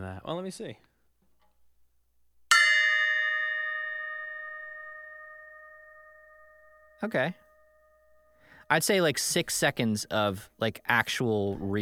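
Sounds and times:
speech: 0.2 - 0.9, 7.0 - 7.4, 8.7 - 11.8
single bell struck and ringing out: 2.5 - 9.2.

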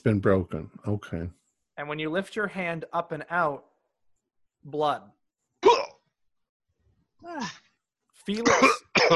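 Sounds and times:
speech: 0.0 - 3.7, 4.6 - 5.2, 7.2 - 7.6, 8.2 - 9.1
person coughing in harsh bursts: 5.6 - 6.0, 8.4 - 9.1.

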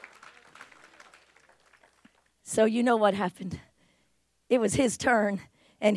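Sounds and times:
audience applauding: 0.0 - 2.4
speech: 2.5 - 3.7, 4.5 - 5.9.

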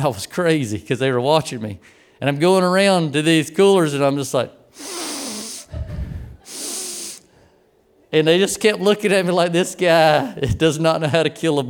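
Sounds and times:
speech: 0.0 - 4.9, 8.1 - 11.6
person sniffing through the nose during a sniff test in a kitchen: 4.7 - 7.5
brief low rush of breath: 4.8 - 7.7.

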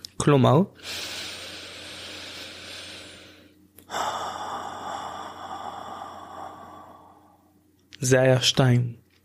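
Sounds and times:
speech: 0.2 - 1.0, 8.0 - 9.0
deep inhale in a breathing exercise: 0.8 - 7.6
slow airy exhale in a breathing exercise: 0.8 - 7.6.

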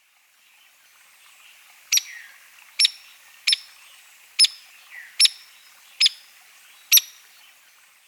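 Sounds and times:
hairy woodpecker pik calls: 1.9 - 3.8, 4.4 - 6.3, 6.9 - 7.2.

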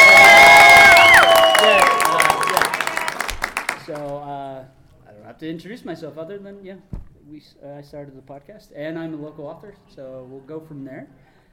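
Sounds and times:
audience cheering and whooping: 0.0 - 4.0
audience clapping: 0.0 - 4.2
speech: 5.4 - 11.3.

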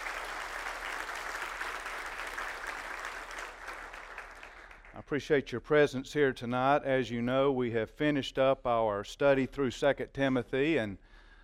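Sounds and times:
audience clapping: 0.0 - 5.0
speech: 5.0 - 11.1.

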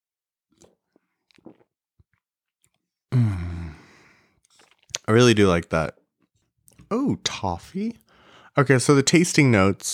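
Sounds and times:
small gulps of beer: 0.5 - 5.2, 7.9 - 8.6
loud drawn-out satisfied ahh breathed out after swallowing: 3.1 - 4.4
soft wet mouth clicks from sipping a drink: 4.4 - 5.1
speech: 5.1 - 6.0, 6.9 - 8.0, 8.6 - 9.9.

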